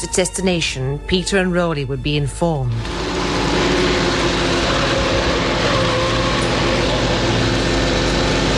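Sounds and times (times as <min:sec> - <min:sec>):
speech: 0:00.0 - 0:03.7
car engine and road noise at speed: 0:02.8 - 0:08.5.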